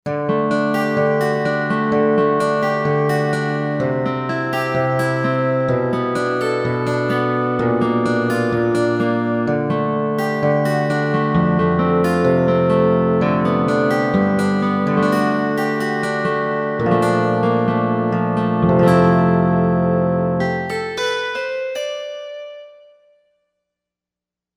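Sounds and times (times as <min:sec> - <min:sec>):
Korg M1Rex finger pick synthesizer notes: 0:00.1 - 0:23.1.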